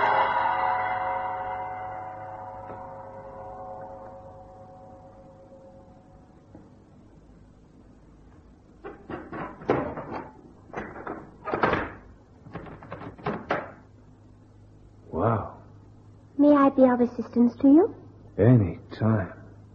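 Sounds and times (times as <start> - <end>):
deep gong note inside a temple building: 0.0 - 6.6
knocks and clatters: 8.8 - 13.9
speech: 16.8 - 19.4.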